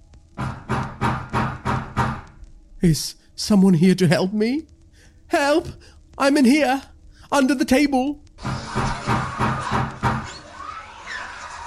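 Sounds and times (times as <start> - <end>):
heavy banging on a door: 0.4 - 2.4, 8.4 - 10.4
speech: 2.8 - 8.5.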